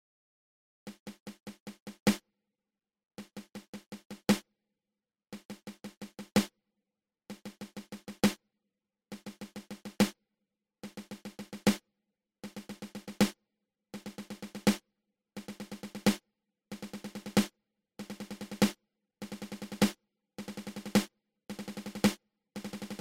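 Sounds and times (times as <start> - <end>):
seven stroke roll on drum: 0.9 - 2.2, 3.2 - 4.4, 5.4 - 6.5, 7.3 - 8.4, 9.1 - 10.2, 10.8 - 11.8, 12.4 - 13.4, 14.0 - 14.8, 15.4 - 22.9.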